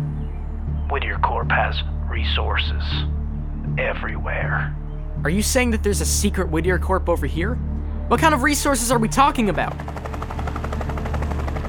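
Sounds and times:
speech: 0.9s - 10.2s
helicopter flying overhead with rotor chop and engine rumble: 8.2s - 11.6s.

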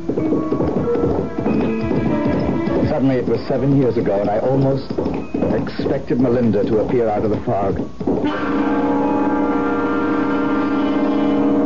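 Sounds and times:
ridden horse's hooves clip-clopping at a brisk pace: 0.0s - 11.6s
speech: 3.0s - 8.9s.

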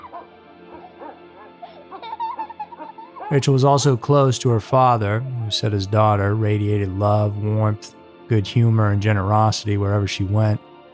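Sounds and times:
rescue dog yipping and barking: 0.0s - 3.3s
laughter: 0.0s - 6.0s
speech: 3.3s - 10.6s.

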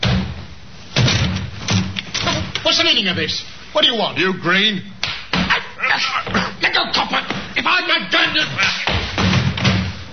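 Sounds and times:
door being forced open: 0.0s - 2.6s, 8.8s - 10.1s
speech: 2.6s - 4.9s, 5.9s - 8.8s.

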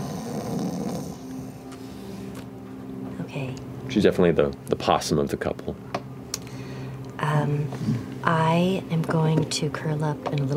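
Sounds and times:
voice imitating a light snore: 0.0s - 1.2s
speech: 3.4s - 6.0s, 7.4s - 10.5s.

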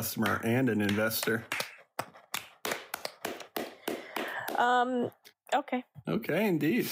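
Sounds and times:
speech: 0.0s - 1.6s, 4.6s - 6.9s
weak scattered clapping: 0.0s - 4.7s.

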